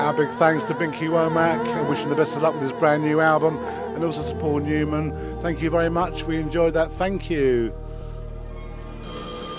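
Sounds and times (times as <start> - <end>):
speech: 0.1 - 7.8
old-style telephone bell ringing: 9.0 - 9.5.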